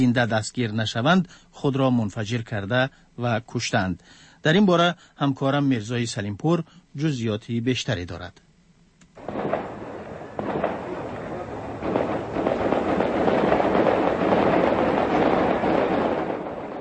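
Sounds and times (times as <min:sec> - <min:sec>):
speech: 0:00.0 - 0:08.4
dense continuous roaring rumble of gunfire: 0:09.2 - 0:16.7
gunfire at night in the hills around the old part of Kabul: 0:09.2 - 0:16.7.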